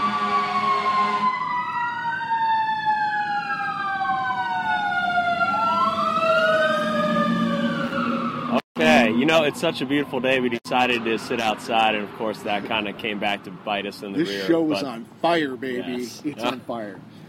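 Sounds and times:
fire engine siren wailing outside: 0.0 - 10.6
speech: 9.3 - 17.1.

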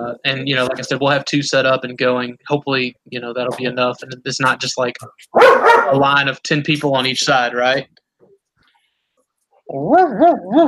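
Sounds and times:
speech: 0.1 - 8.0, 9.7 - 10.6
dog just in from outside whining and yowling: 9.7 - 10.6.

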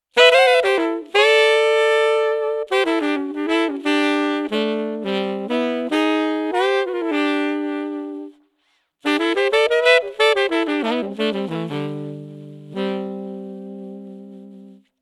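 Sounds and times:
saxophone through Eventide Pitchfactor: 0.1 - 15.0.

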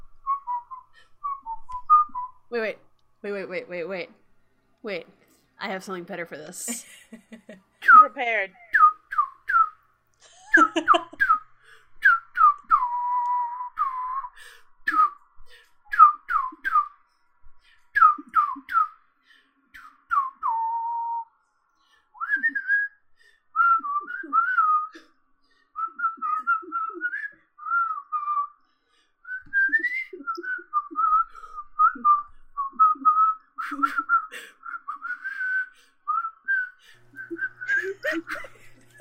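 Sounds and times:
person whistling a tune: 0.2 - 2.4, 8.7 - 9.8, 10.5 - 17.0, 17.9 - 19.0, 19.8 - 28.6, 29.2 - 38.4
speech: 2.5 - 4.2, 4.8 - 8.6, 10.8 - 11.2
person laughing: 6.7 - 7.8, 10.2 - 11.4, 37.2 - 39.0.

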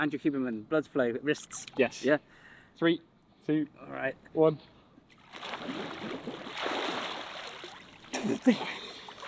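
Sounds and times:
speech: 0.0 - 4.8, 8.2 - 8.8
cold water splashing as people move through it: 5.1 - 9.2.

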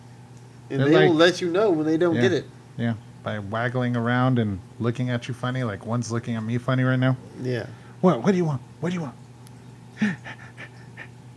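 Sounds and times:
speech: 0.7 - 9.2, 10.0 - 10.4
person panting in imitation of a dog: 10.0 - 11.1.

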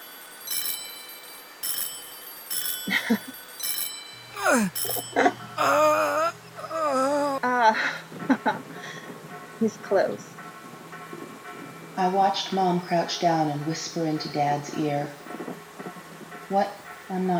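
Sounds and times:
bells ringing: 0.0 - 7.4, 10.9 - 15.5
mournful wavering wail: 2.5 - 7.8
speech: 2.8 - 3.4, 4.5 - 6.3, 9.6 - 10.4, 12.0 - 15.2, 16.5 - 17.3.

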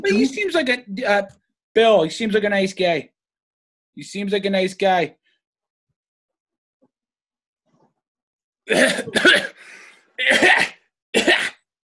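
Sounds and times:
speech: 0.0 - 3.1, 4.0 - 5.2, 8.7 - 11.3
person sneezing from dust: 10.2 - 11.6.

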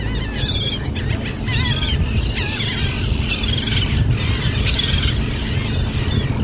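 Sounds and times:
laughing gulls calling at a seabird colony off the coast of Maine: 0.0 - 6.4
steady low engine rumble: 0.0 - 6.4.

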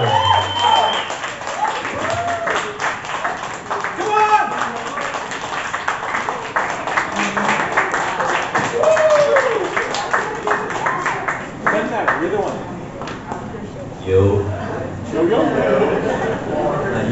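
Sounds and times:
crowd cheers and whoops: 0.0 - 3.0, 4.0 - 4.8, 8.6 - 10.0
crowd applauding for a poet: 0.0 - 12.6
laughter: 14.1 - 17.0.

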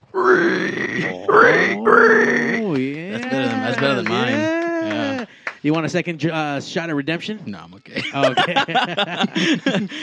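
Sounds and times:
person imitating a pig squeal with their voice: 0.1 - 3.7
speech: 0.1 - 10.0
laughter: 1.0 - 1.9, 2.7 - 5.3, 8.0 - 10.0.

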